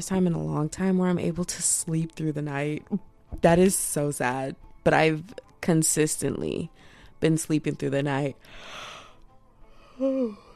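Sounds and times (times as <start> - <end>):
speech: 0.0 - 8.9, 10.0 - 10.4
person yawning: 10.0 - 10.5.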